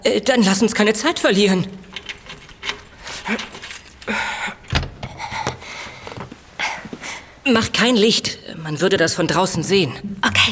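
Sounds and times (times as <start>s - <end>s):
speech: 0.0s - 2.0s, 3.3s - 3.5s, 7.5s - 10.3s
office keys jangling: 1.0s - 5.4s
soft rustling: 1.1s - 7.4s
office door lock turning: 1.2s - 5.3s.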